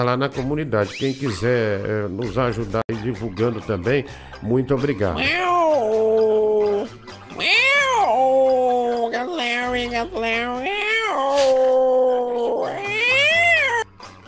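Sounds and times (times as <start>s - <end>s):
speech: 0.0s - 5.9s
cat meowing in long wavering yowls: 5.2s - 13.9s.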